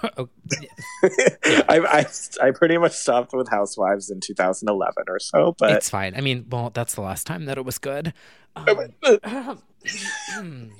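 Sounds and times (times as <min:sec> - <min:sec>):
speech: 0:00.0 - 0:10.7
person murmuring: 0:08.6 - 0:10.7
rough cough: 0:09.3 - 0:10.7.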